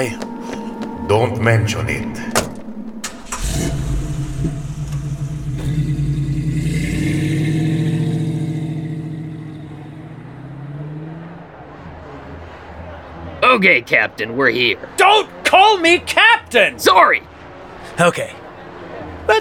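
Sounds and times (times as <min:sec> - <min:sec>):
speech: 0:00.0 - 0:00.3, 0:01.1 - 0:02.4, 0:03.6 - 0:04.6, 0:13.6 - 0:17.3, 0:18.0 - 0:18.4
car engine cranking and catching: 0:02.2 - 0:13.4.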